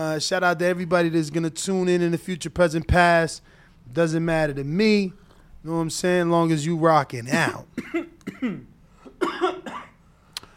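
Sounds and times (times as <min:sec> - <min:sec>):
speech: 0:00.0 - 0:09.5
man coughing in harsh throaty sputtering burst: 0:07.3 - 0:10.0.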